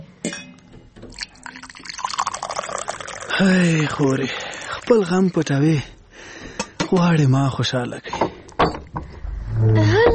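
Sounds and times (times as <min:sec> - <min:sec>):
cold fresh water poured from a jug into a glass: 0:01.1 - 0:05.6
speech: 0:03.4 - 0:05.9, 0:06.9 - 0:08.8, 0:09.6 - 0:10.0.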